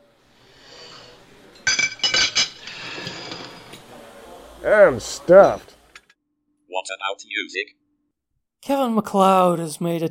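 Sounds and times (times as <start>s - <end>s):
silverware clattering together after dinner: 1.5s - 3.9s
plate pushed along a kitchen counter: 2.5s - 3.9s
speech: 4.6s - 5.7s, 6.9s - 7.8s, 8.7s - 10.0s.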